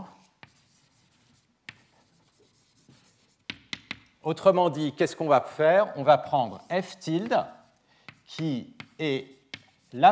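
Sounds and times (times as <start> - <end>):
scratching and tapping of writing on a board during a lecture: 0.0 - 4.1, 6.5 - 10.1
speech: 4.2 - 7.6, 8.3 - 10.1.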